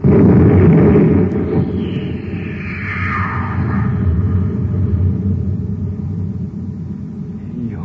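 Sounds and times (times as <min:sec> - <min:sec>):
cosmic torpedo gun firing aboard a spaceship: 0:00.0 - 0:02.5
sweeping whoosh falling in pitch: 0:00.6 - 0:06.4.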